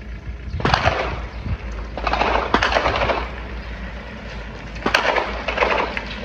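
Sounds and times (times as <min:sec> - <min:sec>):
low rumble: 0:00.0 - 0:06.2
gunfire from a quadcopter drone over Jabalia camp: 0:00.6 - 0:04.0, 0:04.8 - 0:06.2.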